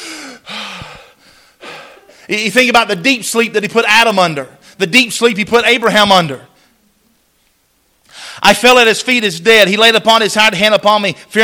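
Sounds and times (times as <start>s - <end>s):
voice imitating sudden gasping breaths: 0.0s - 2.3s
speech: 2.3s - 6.5s, 8.4s - 11.4s.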